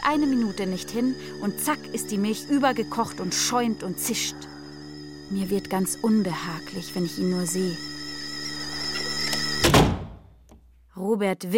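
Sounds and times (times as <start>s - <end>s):
steady tonal hum: 0.0s - 9.7s
speech: 0.1s - 4.6s, 5.3s - 8.0s, 11.0s - 11.5s
door slamming shut: 9.6s - 10.3s.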